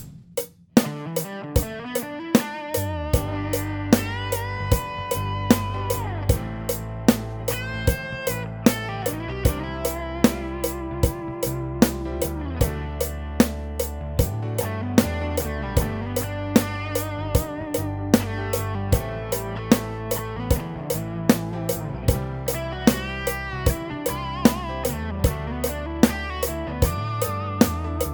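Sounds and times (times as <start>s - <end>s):
roots rock drum beat for drum lessons: 0.0s - 28.1s.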